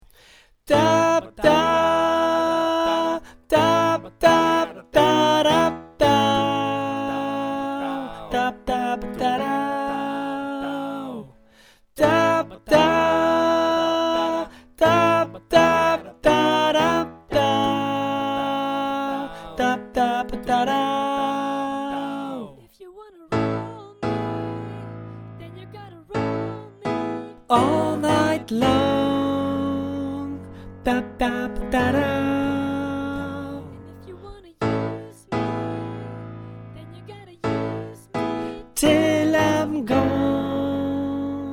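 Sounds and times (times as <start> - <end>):
music, mezzo: 0.7 - 22.3, 23.3 - 41.5.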